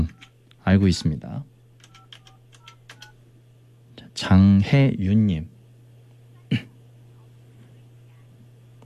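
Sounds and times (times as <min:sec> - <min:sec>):
steady low hum: 0:00.0 - 0:08.8
speech: 0:00.7 - 0:01.5, 0:04.2 - 0:05.5
telephone keypad beeps as a phone number is dialed: 0:01.8 - 0:03.1.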